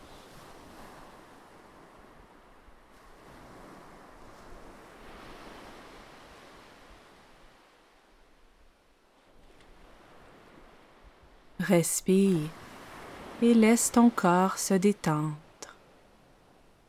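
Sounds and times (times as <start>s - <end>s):
ocean waves breaking on shore: 0.0s - 16.8s
speech: 11.7s - 12.6s, 13.4s - 15.4s.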